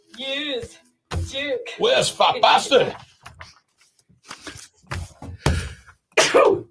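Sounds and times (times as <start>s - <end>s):
speech: 0.2s - 3.0s
shorter breathy scuffling sounds: 2.9s - 6.1s
loud sneeze: 6.2s - 6.6s.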